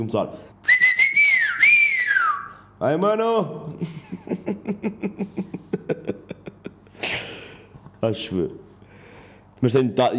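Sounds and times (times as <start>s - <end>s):
speech: 0.0s - 0.8s, 2.8s - 6.2s, 8.0s - 8.6s, 9.6s - 10.1s
person whistling a short melodic phrase: 0.6s - 2.6s
laughter: 3.7s - 7.4s.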